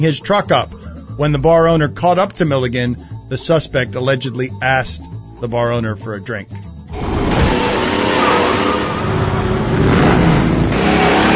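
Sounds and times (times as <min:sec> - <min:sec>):
speech: 0:00.0 - 0:07.0
car engine revving and driving past: 0:06.9 - 0:11.3.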